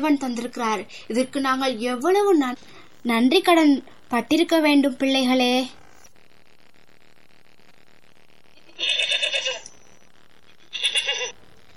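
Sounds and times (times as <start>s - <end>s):
speech: 0.0s - 5.8s
sheep bleating: 8.7s - 9.7s.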